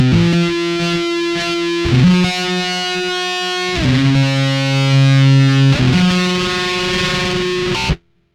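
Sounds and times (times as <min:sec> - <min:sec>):
distorted guitar loop: 0:00.0 - 0:08.1.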